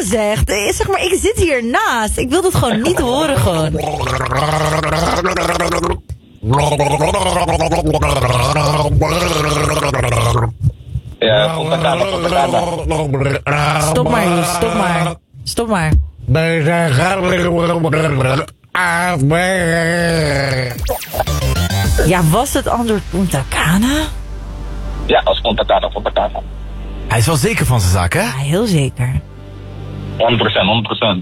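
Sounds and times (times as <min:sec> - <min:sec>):
speech: 0:00.0 - 0:10.6, 0:11.2 - 0:24.2, 0:25.1 - 0:29.3, 0:30.2 - 0:31.2
person gargling a song: 0:02.7 - 0:15.2, 0:16.8 - 0:18.6, 0:19.6 - 0:22.2.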